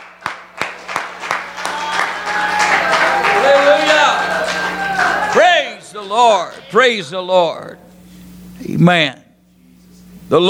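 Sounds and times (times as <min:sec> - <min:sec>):
church congregation clapping along during a night worship service: 0:00.0 - 0:06.8
church congregation crowd noise: 0:00.0 - 0:08.0
speech: 0:06.1 - 0:07.8, 0:08.6 - 0:09.2, 0:10.3 - 0:10.4.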